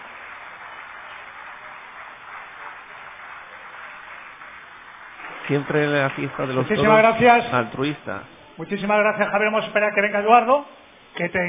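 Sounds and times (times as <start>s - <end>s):
crowd applause: 0.0s - 8.0s
speech: 5.5s - 11.4s.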